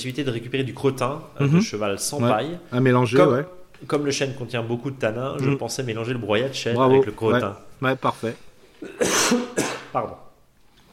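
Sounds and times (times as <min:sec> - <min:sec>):
speech: 0:00.0 - 0:10.2
throat clearing: 0:08.8 - 0:10.0.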